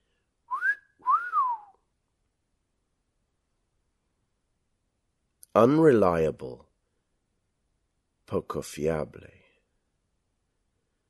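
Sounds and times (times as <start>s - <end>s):
two-part wolf whistle: 0.5s - 1.8s
speech: 5.6s - 6.7s, 8.3s - 9.4s.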